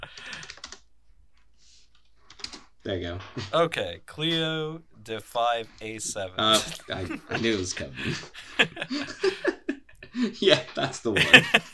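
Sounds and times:
typing on a computer keyboard: 0:00.0 - 0:00.8, 0:02.0 - 0:02.7
speech: 0:02.8 - 0:09.5, 0:10.2 - 0:11.7
laughter: 0:06.4 - 0:11.7.

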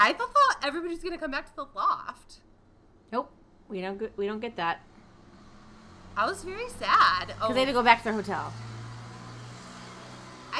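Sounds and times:
speech: 0:00.1 - 0:02.5, 0:03.1 - 0:04.9, 0:06.2 - 0:08.7
car engine humming as it pulls away: 0:04.7 - 0:10.5.

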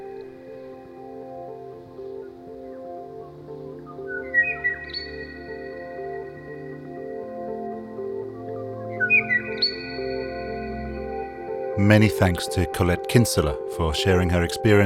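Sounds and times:
steady low musical drone: 0:00.0 - 0:14.8
Kauai oo call of rising whistled notes: 0:03.8 - 0:06.6, 0:08.9 - 0:10.5
speech: 0:11.8 - 0:14.8.

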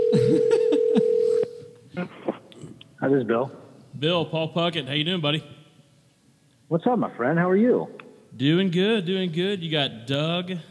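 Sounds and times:
steady telephone tone humming: 0:00.0 - 0:01.6
speech: 0:00.1 - 0:01.1, 0:03.1 - 0:05.6, 0:06.7 - 0:10.6.

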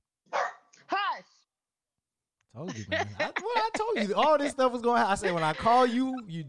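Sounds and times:
dog barking: 0:00.3 - 0:00.8
laughter: 0:02.6 - 0:06.4
speech: 0:02.6 - 0:06.4.

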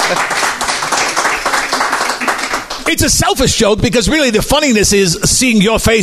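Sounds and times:
audience clapping for a knock-knock joke: 0:00.0 - 0:03.5
speech: 0:00.1 - 0:00.3, 0:02.9 - 0:06.0.

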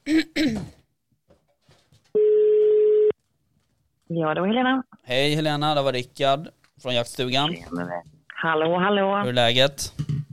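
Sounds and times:
person clearing throat: 0:00.0 - 0:00.8
telephone ringing tone on an outgoing call: 0:02.2 - 0:03.1
speech: 0:04.2 - 0:10.0.

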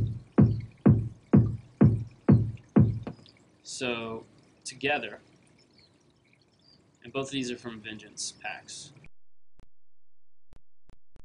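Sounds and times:
sub bass layer of a kick drum sample: 0:00.0 - 0:03.2
speech: 0:03.7 - 0:05.3, 0:07.1 - 0:09.0.

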